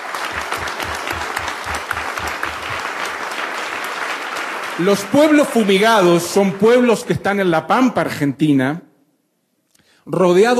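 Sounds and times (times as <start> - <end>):
audience applause: 0.0 - 7.3
speech: 4.8 - 8.9, 10.1 - 10.5.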